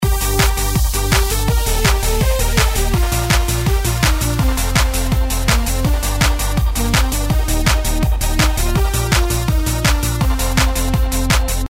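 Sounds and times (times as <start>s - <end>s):
intro background music: 0.0s - 11.6s.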